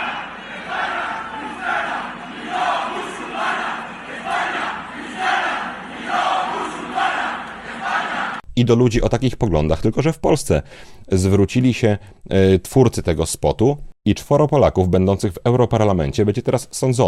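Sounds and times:
large street protest crowd chanting slogans in unison: 0.0s - 8.4s
speech: 8.6s - 17.0s.

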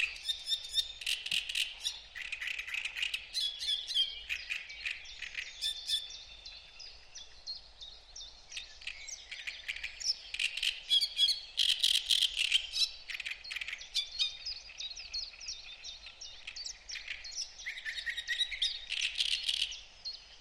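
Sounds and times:
two Great Reed Warblers singing in reed beds by a lake: 0.0s - 20.4s.

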